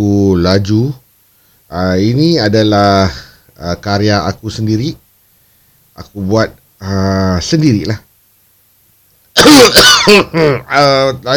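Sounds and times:
speech: 0.0s - 1.0s, 1.7s - 5.0s, 6.0s - 8.1s, 9.4s - 11.3s
singer coughing while introducing a song: 9.4s - 10.7s.

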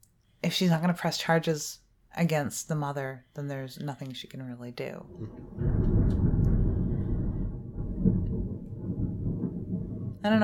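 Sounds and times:
speech: 0.5s - 5.6s, 10.2s - 10.4s
thunder rumbling during a storm: 4.8s - 10.4s.

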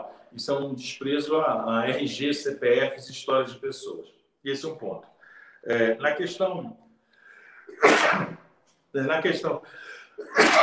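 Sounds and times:
speech: 0.1s - 6.8s, 7.7s - 10.6s
person sneezing: 7.6s - 8.5s, 10.0s - 10.6s.

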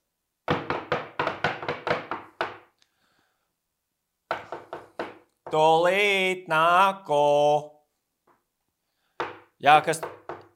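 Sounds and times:
knocking on a wooden door: 0.5s - 2.7s, 4.3s - 5.6s, 9.2s - 10.5s
speech: 5.5s - 7.8s, 9.6s - 10.2s.

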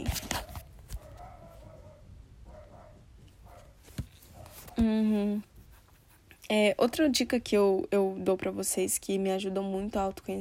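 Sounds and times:
dogs barking: 0.3s - 4.7s
speech: 4.8s - 5.5s, 6.5s - 10.3s.

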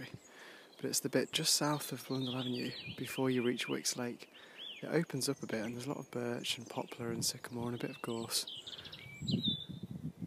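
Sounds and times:
bird chirps in birch scrub: 0.0s - 10.0s
speech: 0.8s - 9.5s.

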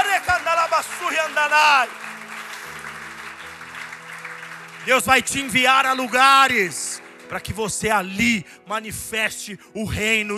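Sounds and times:
audience applauding: 0.0s - 8.2s
sustained low keyboard chords: 0.0s - 10.3s
speech: 1.0s - 2.0s, 4.8s - 10.3s.

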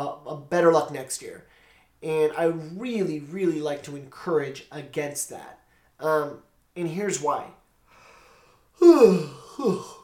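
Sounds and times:
speech: 0.0s - 7.6s, 8.8s - 10.0s
person yawning: 8.8s - 10.0s.

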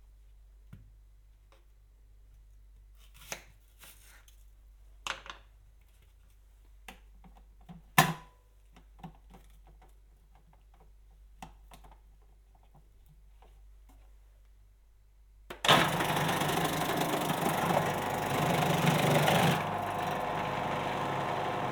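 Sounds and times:
food processor motor slicing a halved onion: 15.6s - 21.7s.

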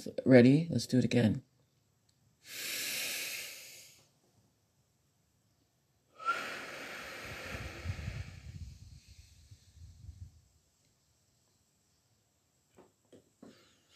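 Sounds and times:
speech: 0.0s - 1.5s
breathy exhale through the mouth during a guided breathing exercise: 2.4s - 4.1s, 6.2s - 10.2s
inhale through the nose during a guided breathing exercise: 2.4s - 4.1s, 6.2s - 10.2s.

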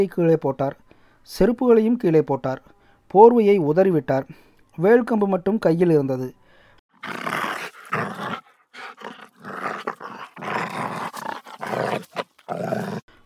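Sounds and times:
speech: 0.0s - 6.4s, 7.0s - 7.2s
dog growling and snarling while attacking a man: 6.9s - 13.1s.

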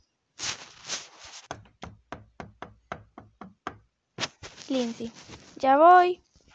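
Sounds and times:
rough scraping: 0.4s - 1.6s, 4.2s - 5.6s
knocking on the door of a house: 1.5s - 3.9s
speech: 4.7s - 6.2s.

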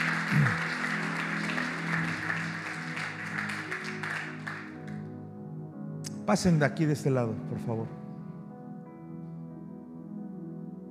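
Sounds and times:
audience applauding: 0.0s - 5.0s
speech: 6.3s - 8.0s.

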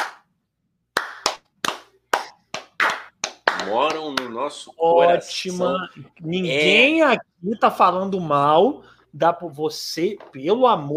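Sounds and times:
hands clapping: 0.0s - 0.3s, 1.0s - 4.6s
speech: 3.6s - 10.9s.

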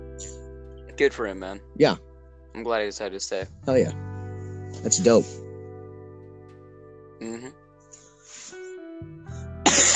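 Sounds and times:
low murmur and hum: 1.0s - 1.6s, 2.6s - 4.0s
speech: 1.0s - 4.0s, 4.8s - 5.4s, 7.2s - 7.6s
harsh loud cough: 9.7s - 9.9s.

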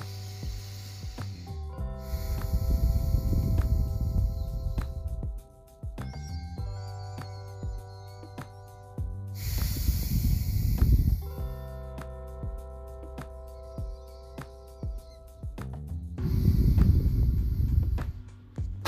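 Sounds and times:
sustained gentle tonal music: 0.0s - 18.8s
slow deep inhale through the nose during a guided breathing exercise: 2.0s - 4.4s, 9.4s - 11.2s, 16.2s - 18.1s.

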